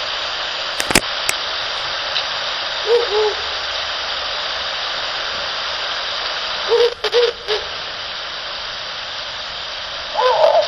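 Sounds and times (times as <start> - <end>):
background hiss: 0.0 - 10.6
male and female Ural owl hooting: 2.8 - 3.7, 6.6 - 7.7, 10.1 - 10.6
speech: 2.9 - 3.4.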